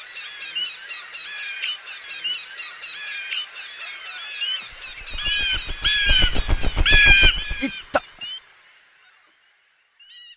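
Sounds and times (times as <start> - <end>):
flock of crows cawing: 4.9 - 8.0.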